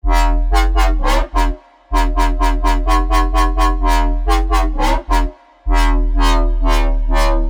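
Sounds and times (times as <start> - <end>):
bass house synth drop loop in E: 0.0 - 7.4.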